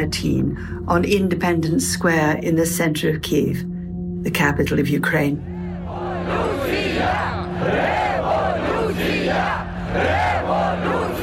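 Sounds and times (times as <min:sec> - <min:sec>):
speech: 0:00.0 - 0:05.5
steady low hum: 0:00.0 - 0:11.2
large crowd of students protesting, chanting and shouting: 0:05.5 - 0:11.2.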